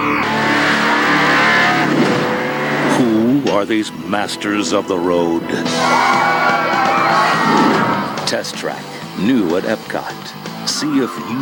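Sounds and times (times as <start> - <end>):
test car engine revving and accelerating on a test track: 0.0 - 11.4
speech: 3.6 - 6.4, 8.3 - 11.4.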